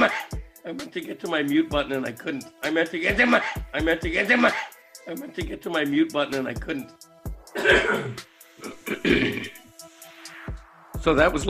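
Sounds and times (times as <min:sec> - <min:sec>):
man clearing his throat harshly: 0:00.0 - 0:00.4, 0:03.2 - 0:04.8, 0:07.5 - 0:09.6
speech: 0:00.0 - 0:09.6, 0:11.0 - 0:11.4.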